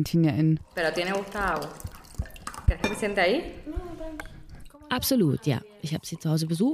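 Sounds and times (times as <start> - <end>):
speech: 0.0 - 1.9, 2.8 - 4.3, 4.9 - 6.7
water poured from an old gin bottle into a glass: 0.6 - 3.6
glass and tableware clinking: 2.2 - 3.3.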